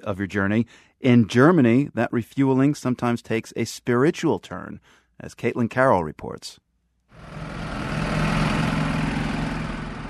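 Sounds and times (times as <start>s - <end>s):
speech: 0.0s - 6.6s
trucks and cars passing on a highway: 7.2s - 10.0s.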